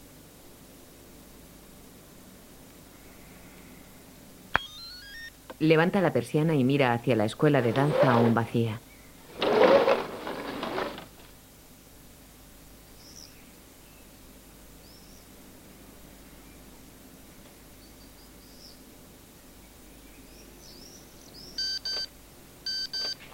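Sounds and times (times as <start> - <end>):
mobile phone beeping as it is switched on: 4.6 - 5.3, 21.6 - 22.1, 22.7 - 23.2
speech: 5.6 - 8.9
faint birdsong: 7.6 - 9.3, 12.8 - 22.0.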